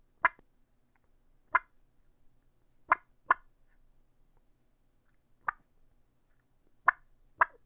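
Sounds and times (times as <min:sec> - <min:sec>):
dynamite turkey mouth call clucks: 0:01.5 - 0:01.8, 0:02.9 - 0:03.5, 0:05.4 - 0:05.6, 0:06.9 - 0:07.6.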